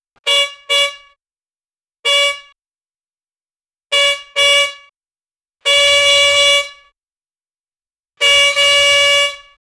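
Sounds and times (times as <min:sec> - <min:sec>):
quick car horn beeps: 0:00.2 - 0:01.2, 0:02.0 - 0:02.6, 0:03.9 - 0:05.0, 0:05.6 - 0:07.0, 0:08.2 - 0:09.6.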